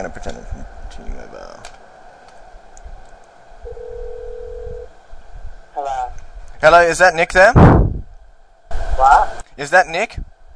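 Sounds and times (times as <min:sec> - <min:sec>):
speech: 0:00.0 - 0:01.8, 0:06.6 - 0:07.8, 0:09.0 - 0:10.3
quiet low rumble: 0:00.0 - 0:10.5
outgoing phone call ringing tone: 0:03.6 - 0:04.9.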